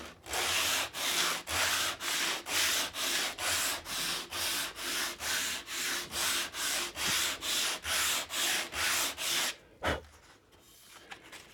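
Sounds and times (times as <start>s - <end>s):
sandpaper sanding a piece of wood: 0.4s - 9.6s.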